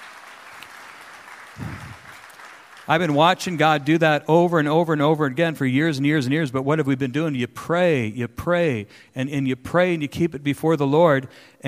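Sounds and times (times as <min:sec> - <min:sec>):
congregation clapping at a church gathering: 0:00.0 - 0:04.1
speech: 0:02.9 - 0:11.6.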